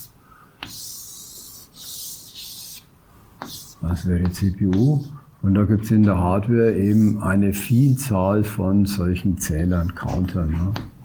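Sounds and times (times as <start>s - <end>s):
scratchy rubbing strokes of drawing a small sketch during a lecture: 0.7s - 5.1s, 6.6s - 8.2s
speech: 3.8s - 11.0s.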